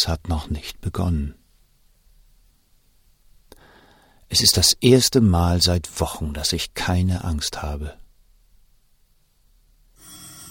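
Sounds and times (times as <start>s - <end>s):
speech: 0.0s - 1.4s, 4.3s - 8.0s
telephone ringing in an official's office downstairs: 10.0s - 10.5s.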